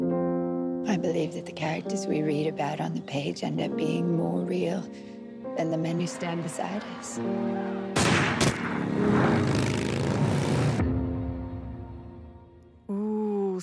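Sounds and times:
film soundtrack music: 0:00.0 - 0:13.1
speech: 0:00.8 - 0:10.0
low sustained drone: 0:03.9 - 0:12.4
long rumbling echo: 0:05.6 - 0:11.4
gunshot from a film soundtrack: 0:08.0 - 0:09.4
second sharp crack: 0:08.0 - 0:10.7.

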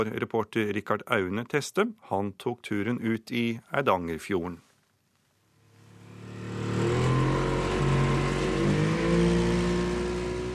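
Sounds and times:
speech: 0:00.0 - 0:04.7
motorboat 70 hp outboard engine on Eidangerfjorden in Norway: 0:05.7 - 0:10.5.

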